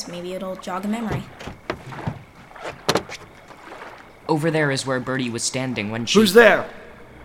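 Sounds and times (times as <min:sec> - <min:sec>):
speech: 0:00.0 - 0:01.5, 0:04.3 - 0:06.8
water and hull noise aboard a boat: 0:00.0 - 0:07.2
soft creaks aboard a boat: 0:01.0 - 0:04.2
sharp knocks aboard a boat: 0:01.1 - 0:03.3.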